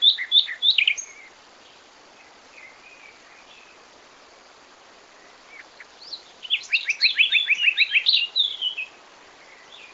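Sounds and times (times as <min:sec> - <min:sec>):
common nightingale Luscinia megarhynchos singing: 0:00.0 - 0:04.0, 0:05.1 - 0:09.9.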